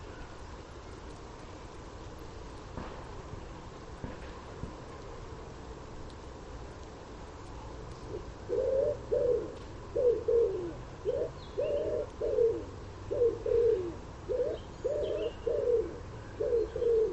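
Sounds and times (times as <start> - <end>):
common wood pigeon cooing: 8.0 - 17.1.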